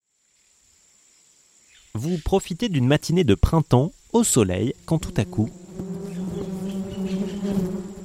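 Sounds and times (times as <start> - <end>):
speech: 1.9 - 5.6
honeybee buzzing: 4.7 - 8.0.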